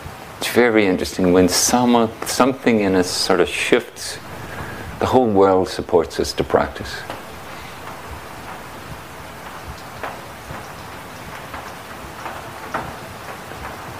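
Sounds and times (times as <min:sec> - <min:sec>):
steady rain splashing on a roof and the ground: 0:00.0 - 0:13.9
speech: 0:00.4 - 0:04.3, 0:05.0 - 0:07.2
sharper taps and clatters of raindrops: 0:06.4 - 0:13.0.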